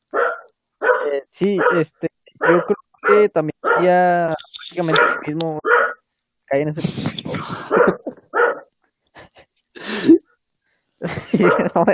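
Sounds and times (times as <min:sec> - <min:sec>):
dog barking: 0:00.1 - 0:04.0, 0:04.8 - 0:06.0, 0:07.7 - 0:08.7, 0:11.4 - 0:11.8
speech: 0:01.3 - 0:05.7, 0:06.5 - 0:08.0, 0:11.4 - 0:11.9
laughter: 0:06.8 - 0:08.2, 0:11.0 - 0:11.9.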